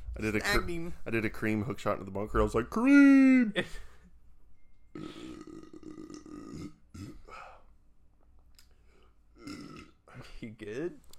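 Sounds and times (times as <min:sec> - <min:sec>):
speech: 0:00.2 - 0:03.9, 0:10.4 - 0:11.1
loud drawn-out burp: 0:05.0 - 0:07.3, 0:09.4 - 0:10.0.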